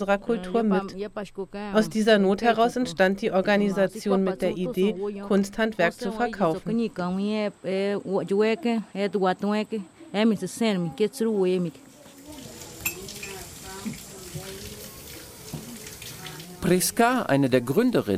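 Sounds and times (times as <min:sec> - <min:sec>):
speech: 0:00.0 - 0:11.9, 0:16.6 - 0:18.1
water running from a tap in a large kitchen: 0:12.0 - 0:17.9
dishes and cutlery clinking: 0:12.8 - 0:13.5.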